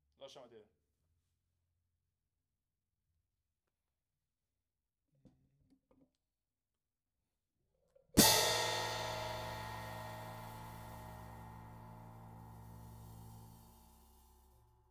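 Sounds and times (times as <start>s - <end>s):
hi-hat: 8.2s - 14.5s.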